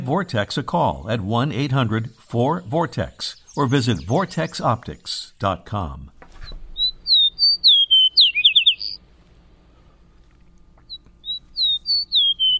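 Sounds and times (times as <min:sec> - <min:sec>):
speech: 0:00.1 - 0:06.1
songbird singing whistled notes and trill: 0:01.3 - 0:05.2, 0:06.3 - 0:12.5.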